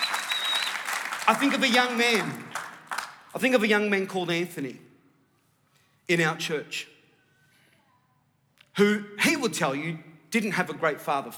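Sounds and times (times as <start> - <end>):
audience applause in a church: 0.0 - 3.3
speech: 1.3 - 2.5, 3.3 - 4.9, 6.1 - 6.9, 8.8 - 11.3.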